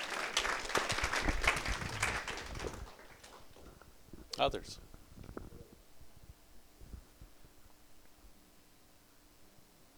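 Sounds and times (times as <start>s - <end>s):
room full of people clapping: 0.0s - 3.8s
speech: 4.4s - 4.9s.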